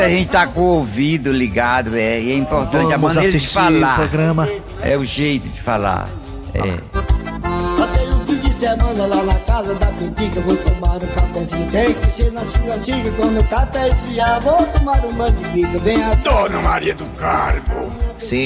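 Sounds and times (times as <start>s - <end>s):
speech: 0.0s - 7.0s, 8.6s - 18.4s
man singing a playful comic song: 7.6s - 18.4s
full band playing: 15.4s - 18.3s.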